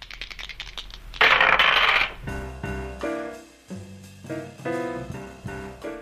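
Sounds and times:
dice clattering and tumbling across a hard surface: 0:00.0 - 0:02.2.

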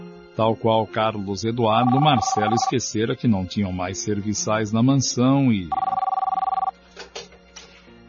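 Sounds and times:
speech: 0:00.4 - 0:05.9
telephone ringing with an electronic ring: 0:01.8 - 0:02.8, 0:05.7 - 0:06.7.

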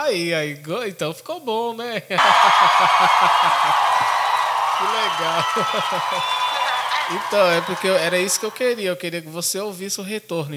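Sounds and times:
speech: 0:00.0 - 0:04.2, 0:04.8 - 0:06.4, 0:07.1 - 0:10.5
laughter: 0:02.2 - 0:08.8
audience cheering and applauding: 0:02.2 - 0:08.9.

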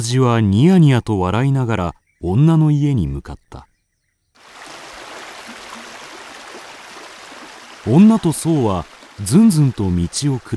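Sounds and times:
speech: 0:00.0 - 0:03.7, 0:07.8 - 0:10.5
flowing mountain stream water: 0:04.4 - 0:10.5.

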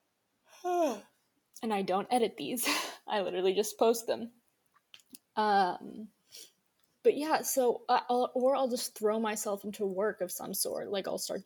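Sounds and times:
breathy yawn with a voiced groan: 0:00.6 - 0:01.1
speech: 0:00.6 - 0:04.4, 0:05.4 - 0:11.4.

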